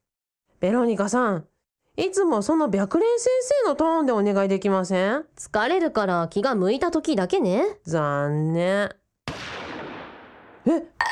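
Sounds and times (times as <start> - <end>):
speech: 0.6 - 9.0, 10.6 - 11.1
gunshot fired in an underground air-raid shelter: 9.3 - 10.7.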